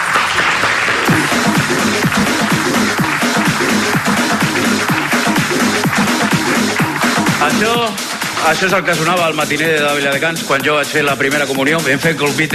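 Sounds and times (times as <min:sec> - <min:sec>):
sizable crowd applauding: 0:00.0 - 0:09.1
speech: 0:07.8 - 0:12.5.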